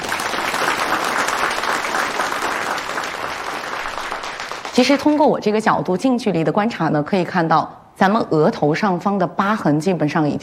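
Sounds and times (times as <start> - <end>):
room full of people applauding: 0.0 - 5.2
speech: 4.8 - 10.4.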